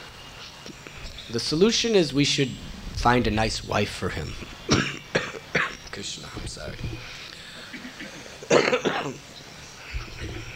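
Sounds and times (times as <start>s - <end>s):
faint low rumble: 0.7s - 7.5s, 9.8s - 10.5s
speech: 1.3s - 4.5s, 6.0s - 7.1s, 9.0s - 9.3s
person coughing: 4.7s - 5.8s, 7.6s - 9.2s.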